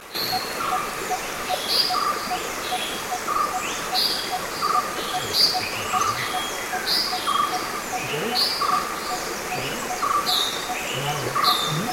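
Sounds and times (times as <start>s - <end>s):
steady background noise: 0.0s - 11.9s
grey-headed bulbul Pycnonotus priocephalus chirping: 10.9s - 11.9s.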